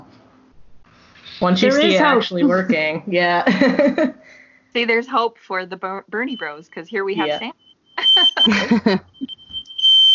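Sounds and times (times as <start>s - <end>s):
speech: 1.4s - 9.4s
laughter: 3.5s - 4.2s, 8.0s - 9.2s
shrill high-pitched fire alarm tone: 6.2s - 10.1s.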